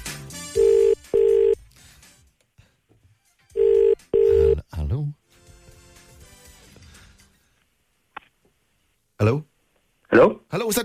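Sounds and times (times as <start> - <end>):
outgoing phone call ringback tone: 0.6 - 1.6, 3.6 - 4.6
speech: 10.7 - 10.8.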